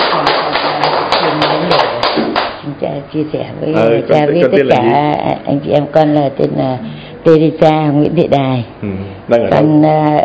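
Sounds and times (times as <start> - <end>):
crowd clapping to welcome a speaker: 0.0 - 2.6
speech: 3.1 - 10.2.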